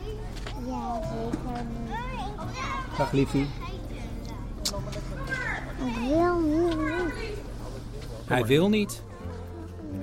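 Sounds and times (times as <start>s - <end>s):
faint chatter of other kids at a school playground: 0.0s - 7.8s
speech: 3.0s - 3.6s, 8.3s - 9.1s.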